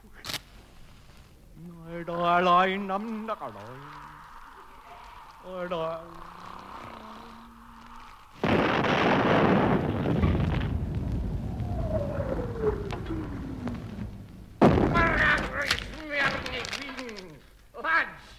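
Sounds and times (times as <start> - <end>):
voices: 1.4 - 18.3
cannon blast after its fuse is lit: 8.4 - 16.5.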